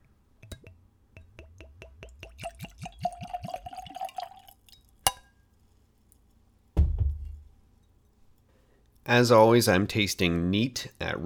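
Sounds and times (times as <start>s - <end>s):
liqueur glugging from a screw-cap bottle into a tulip-shaped nosing glass: 0.4s - 5.2s
glass clink: 3.2s - 5.5s
dull thud: 6.8s - 7.5s
speech: 9.1s - 11.2s.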